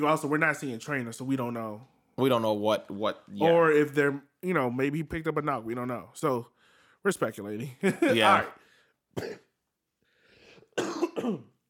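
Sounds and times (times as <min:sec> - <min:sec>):
speech: 0:00.0 - 0:08.6, 0:09.2 - 0:09.4, 0:10.8 - 0:11.5
wheezy breath: 0:06.6 - 0:07.0, 0:10.0 - 0:10.8
person coughing: 0:09.2 - 0:09.5, 0:10.7 - 0:11.6.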